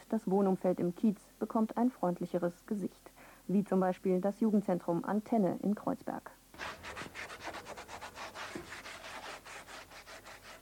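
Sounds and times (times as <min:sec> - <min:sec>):
speech: 0:00.1 - 0:06.8
sandpaper rasping on a wooden door in a youth centre event hall: 0:06.6 - 0:10.6.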